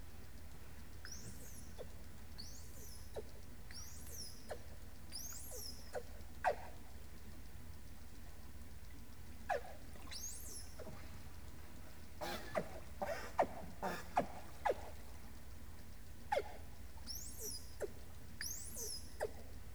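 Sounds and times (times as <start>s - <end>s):
dolphin whistles: 1.0s - 6.7s, 9.5s - 11.0s, 12.2s - 15.0s, 16.3s - 19.5s
dolphin burst-like pulses: 12.2s - 15.1s.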